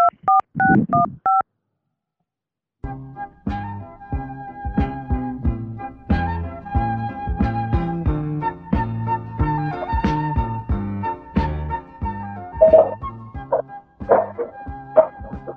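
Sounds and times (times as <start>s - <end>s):
touch-tone telephone dialing beeps while a call is placed: 0.0s - 1.4s
melodic tonal hold music: 3.1s - 15.5s.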